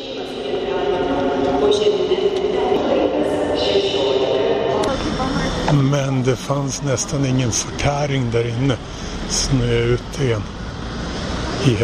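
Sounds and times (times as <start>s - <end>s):
indistinct voices murmuring in a train station: 0.0s - 10.6s
rumbling hum of rail machinery in a train station: 0.0s - 11.8s
speech: 5.7s - 10.6s, 11.6s - 11.8s.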